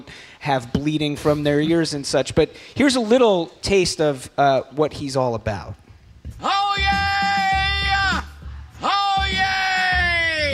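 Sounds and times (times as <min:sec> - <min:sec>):
speech: 0:00.0 - 0:05.8
man bellowing a town crier's call: 0:06.4 - 0:10.5.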